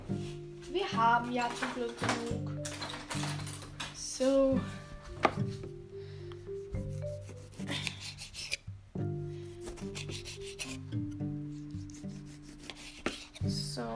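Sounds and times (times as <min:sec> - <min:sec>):
speech: 0:01.0 - 0:03.3, 0:04.2 - 0:05.6
knife cutting a tomato with sawing strokes: 0:06.8 - 0:08.7, 0:09.4 - 0:13.9.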